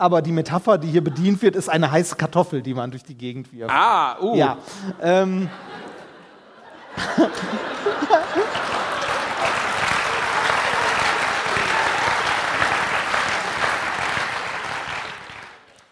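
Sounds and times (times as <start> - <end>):
speech: 0.0 - 5.8, 7.0 - 8.4
laughter: 4.8 - 9.6
crowd applauding: 6.8 - 15.8.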